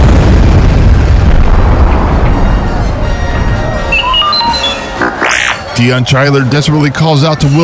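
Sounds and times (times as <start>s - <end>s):
explosion: 0.0s - 5.1s
crackles and pings of falling rubble: 1.3s - 5.8s
speech: 5.8s - 7.6s.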